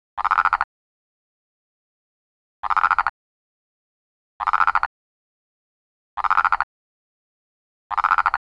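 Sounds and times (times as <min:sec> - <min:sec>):
Phyllomedusa sauvagii frog calling: 0:00.2 - 0:00.7, 0:02.6 - 0:03.2, 0:04.4 - 0:04.9, 0:06.2 - 0:06.7, 0:07.9 - 0:08.4.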